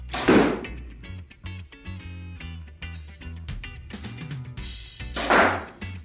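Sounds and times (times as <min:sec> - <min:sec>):
Obsession Final Pro X bow shooting arrows: 0:00.1 - 0:00.9, 0:05.1 - 0:05.8.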